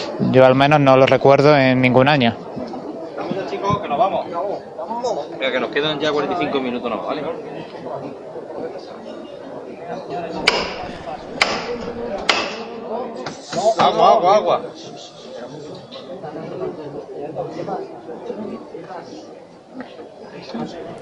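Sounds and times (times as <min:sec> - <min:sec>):
crowd murmur on a street during a Holy Week procession: 0:00.0 - 0:20.9
speech: 0:00.2 - 0:02.4, 0:05.0 - 0:08.2, 0:13.6 - 0:15.1, 0:16.2 - 0:20.9
sharp knocks: 0:10.4 - 0:12.7.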